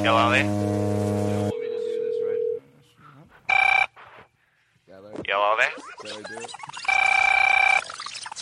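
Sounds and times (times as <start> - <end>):
speech: 0.0 - 1.0, 5.6 - 7.2
loud electronic telephone ring tones through a phone line: 1.5 - 2.6, 3.5 - 3.9, 6.8 - 7.8.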